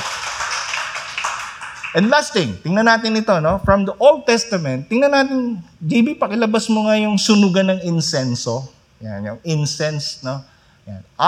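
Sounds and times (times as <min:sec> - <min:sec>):
audience clapping: 0:00.0 - 0:02.5
speech: 0:01.9 - 0:11.2.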